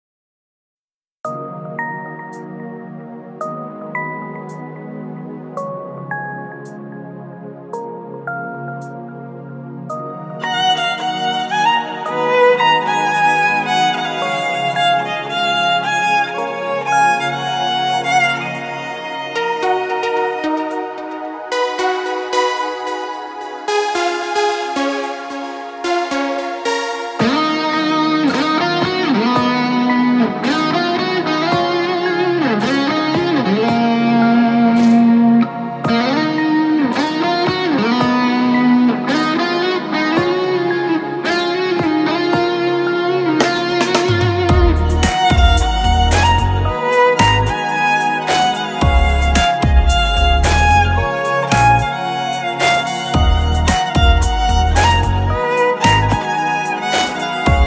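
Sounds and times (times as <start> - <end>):
guitar: 1.3 - 57.6
violin: 10.4 - 36.2, 43.4 - 57.6.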